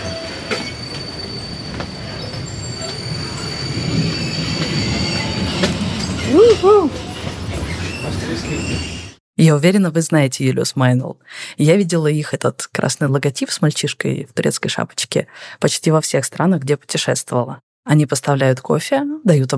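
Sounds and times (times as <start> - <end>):
tram rumbling past: 0.0 - 9.2
tram wheels squealing on rails: 0.0 - 9.2
speech: 9.5 - 19.5.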